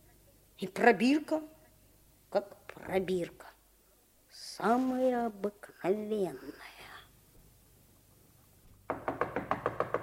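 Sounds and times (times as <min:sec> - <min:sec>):
speech: 0:00.6 - 0:01.6, 0:02.3 - 0:03.5, 0:04.4 - 0:06.7
rapid sharp knocking on a door: 0:08.9 - 0:10.0.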